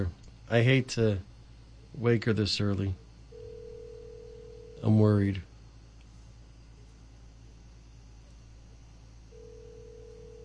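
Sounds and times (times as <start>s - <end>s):
speech: 0.0s - 1.3s, 2.0s - 3.0s, 4.8s - 5.5s
telephone line hum: 2.7s - 5.5s, 7.9s - 10.4s
telephone ringback tone: 3.4s - 4.8s, 9.3s - 10.4s.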